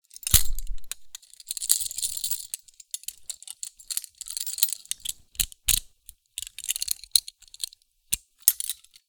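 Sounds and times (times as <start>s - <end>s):
prisoner handcuffs rattling while handled: 0.1s - 9.0s.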